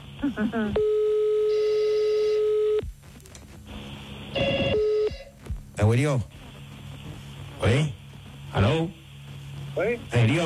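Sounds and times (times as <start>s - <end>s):
speech: 0.2s - 1.0s, 5.8s - 6.4s, 7.6s - 9.0s, 9.8s - 10.4s
telephone line tone during call on hold: 0.8s - 2.8s, 4.3s - 5.3s.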